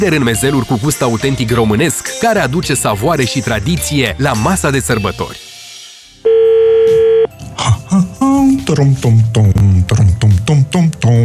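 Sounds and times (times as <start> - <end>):
speech: 0.0 - 5.5, 7.6 - 11.2
electronic telephone ringing: 6.2 - 7.4.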